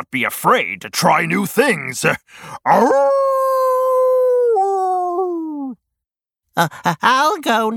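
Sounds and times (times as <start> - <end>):
speech: 0.0 - 3.5, 6.6 - 7.7
wolf howling: 2.7 - 5.8.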